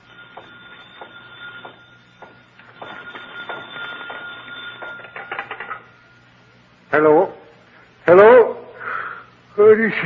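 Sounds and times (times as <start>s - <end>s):
desk telephone ringing in jangling bursts: 0.0s - 6.2s
low steady hum: 0.0s - 10.0s
speech: 7.0s - 7.4s, 8.1s - 8.5s, 9.6s - 10.0s.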